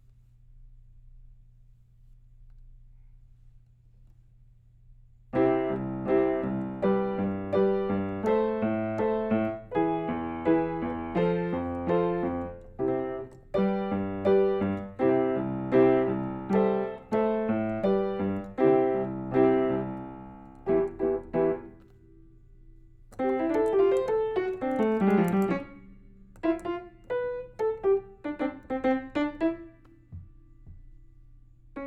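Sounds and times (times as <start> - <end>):
piano: 5.3 - 31.8.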